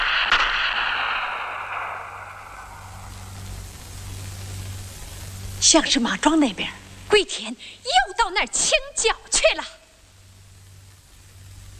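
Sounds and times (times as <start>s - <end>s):
distant gunshot with rolling echo: 0.0s - 3.4s
low steady rumble: 0.0s - 11.7s
speech: 5.6s - 9.8s.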